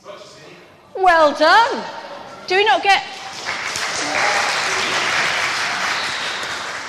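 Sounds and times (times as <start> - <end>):
speech: 1.0 - 3.2
crowd applauding: 3.2 - 6.8.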